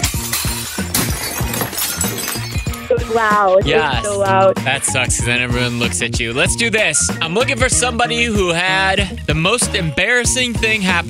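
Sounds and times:
plates crashing and shattering: 0.0 - 2.9
tinkling shards of plates: 0.0 - 2.9
speech: 3.1 - 11.0.

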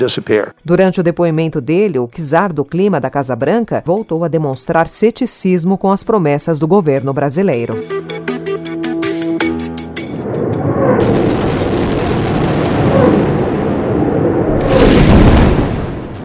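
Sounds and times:
speech: 0.0 - 8.3
Israeli bombing explosions in the Gaza Strip: 10.1 - 16.2.

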